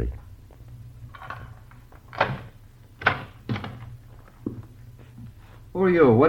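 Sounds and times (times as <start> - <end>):
low steady hum: 0.0 - 6.2
door of a room in a rooming house opening: 2.1 - 3.9.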